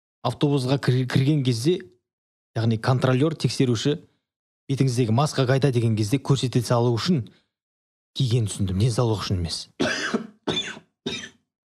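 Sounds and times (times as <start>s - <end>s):
speech: 0.2s - 1.9s, 2.6s - 4.1s, 4.7s - 7.4s, 8.2s - 10.8s
harsh heavy coughs from a person with a virus wearing a disposable mask: 9.8s - 11.5s.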